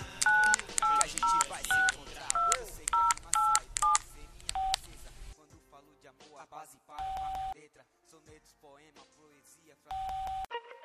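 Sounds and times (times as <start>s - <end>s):
telephone keypad two-tone dialing beeps: 0.2s - 4.9s, 7.0s - 7.6s, 9.9s - 10.5s.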